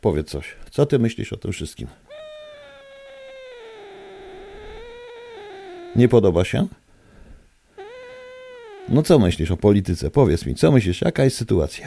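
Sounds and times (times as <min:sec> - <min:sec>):
speech: 0:00.0 - 0:02.1, 0:06.0 - 0:06.8, 0:08.9 - 0:11.8
cat yowling into a microphone: 0:02.1 - 0:06.1, 0:07.8 - 0:09.2.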